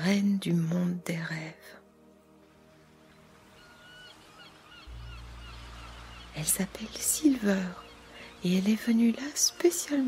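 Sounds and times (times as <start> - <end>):
speech: 0.0 - 1.8, 6.4 - 7.8, 8.4 - 10.0
seagulls squawking: 3.4 - 6.9.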